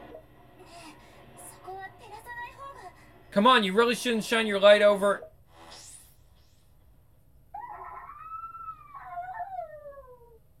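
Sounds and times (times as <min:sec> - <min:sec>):
quiet low hum: 0:00.0 - 0:10.5
speech: 0:03.3 - 0:05.3
long eerie howl in the dark: 0:07.5 - 0:10.4.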